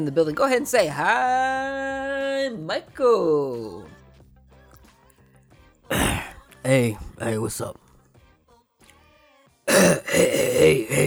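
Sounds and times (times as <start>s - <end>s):
speech: 0.0s - 4.0s, 5.9s - 7.8s, 9.7s - 11.0s
man clearing his throat: 5.9s - 7.5s, 9.7s - 11.0s.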